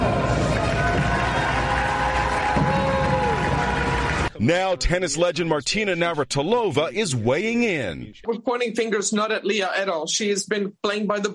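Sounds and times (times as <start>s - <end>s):
scattered clapping from a large indoor crowd at a swimming medal ceremony: 0.0s - 4.4s
speech: 4.4s - 11.3s.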